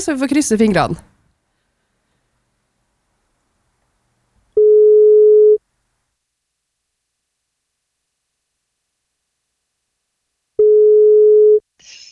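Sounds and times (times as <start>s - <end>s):
speech: 0.0s - 1.1s
phone line ringback tone during outgoing call: 4.6s - 5.6s, 10.6s - 11.6s.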